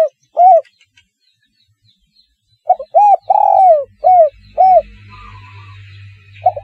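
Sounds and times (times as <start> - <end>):
spotted dove cooing: 0.0 - 0.7, 2.7 - 5.7, 6.4 - 6.6.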